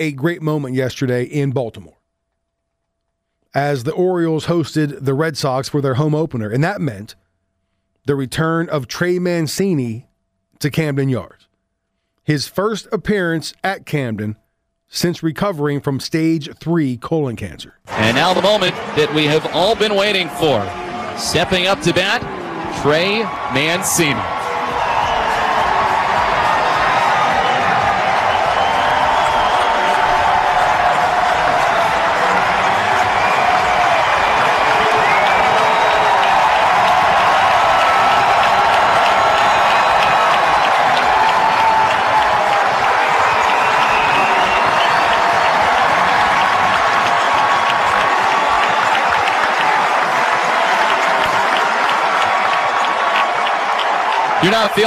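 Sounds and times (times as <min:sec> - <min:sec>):
speech: 0:00.0 - 0:02.0, 0:03.5 - 0:07.2, 0:08.0 - 0:11.5, 0:12.2 - 0:24.4, 0:54.6 - 0:54.8
large ballpark crowd applauding and cheering in a standing ovation: 0:17.9 - 0:54.8.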